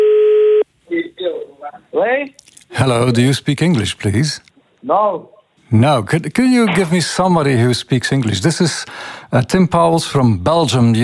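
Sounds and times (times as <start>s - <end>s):
single-pitched telephone tone calling a company: 0.0s - 0.7s
speech: 2.0s - 11.0s.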